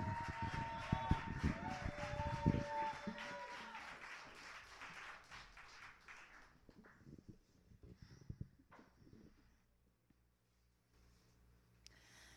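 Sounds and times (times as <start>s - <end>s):
whistles and cheers: 0.0s - 5.2s
crowd applauding a poem at a poetry event: 0.0s - 7.0s.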